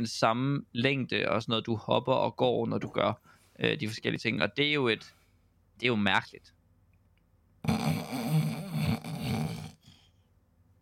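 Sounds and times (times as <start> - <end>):
speech: 0.0 - 5.2, 5.8 - 6.6, 7.6 - 8.0
person faking a snore: 7.6 - 10.1.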